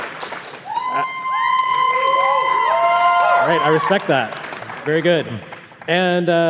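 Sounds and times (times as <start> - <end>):
audience cheering and shouting in a vote for a favorite video game: 0.7 - 4.2
speech: 3.5 - 6.4.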